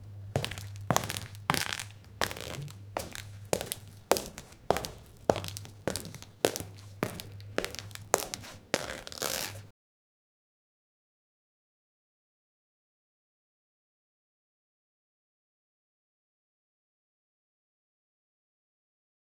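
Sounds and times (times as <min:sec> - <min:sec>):
footsteps in male leather dress shoes: 0:00.0 - 0:09.7.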